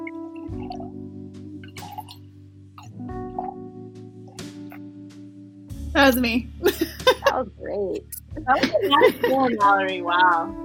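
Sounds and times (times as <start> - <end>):
wine glugging and splashing into a glass: 1.8 - 2.2
speech: 6.0 - 10.6
laughter: 6.6 - 7.4, 8.5 - 9.8.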